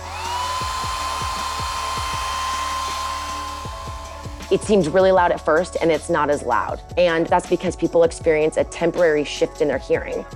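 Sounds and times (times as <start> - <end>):
hair dryer blowing: 0.0 - 5.6
speech: 4.5 - 10.3.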